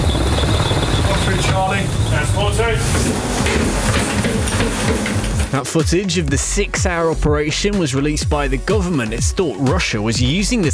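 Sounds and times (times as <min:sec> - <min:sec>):
military helicopter rotor roar during tanker boarding in the English Channel: 0:00.0 - 0:05.2
speech: 0:05.6 - 0:10.7.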